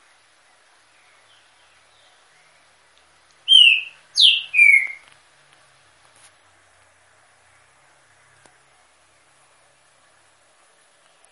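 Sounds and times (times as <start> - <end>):
female green-winged saltator whistling song in an aviary: 3.4 - 5.1.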